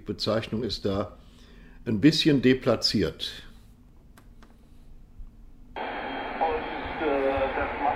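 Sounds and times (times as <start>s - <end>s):
speech: 0.0s - 1.2s, 1.8s - 3.5s
shortwave receiver static: 5.8s - 7.9s
garbled single-sideband voice on shortwave receiver: 6.2s - 7.9s.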